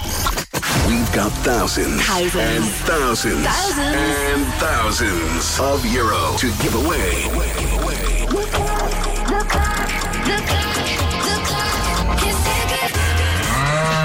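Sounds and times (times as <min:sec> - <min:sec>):
loud busy music in a radio promo: 0:00.7 - 0:14.0
speech: 0:00.9 - 0:11.0
cow mooing in a radio promo: 0:13.3 - 0:14.0.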